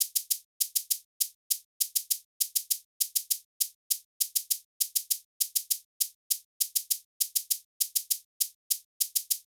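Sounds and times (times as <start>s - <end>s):
hip hop drum beat: 0.0s - 9.5s.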